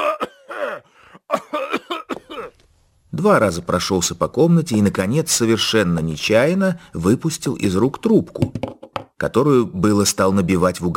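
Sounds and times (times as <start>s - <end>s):
man clearing his throat: 0.0s - 2.6s
man coughing: 0.0s - 2.6s
speech: 3.2s - 10.9s.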